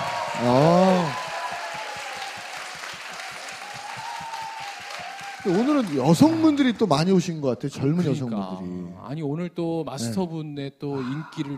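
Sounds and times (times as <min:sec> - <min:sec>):
audience applause: 0:00.0 - 0:07.0
speech: 0:00.4 - 0:00.8, 0:05.4 - 0:11.5.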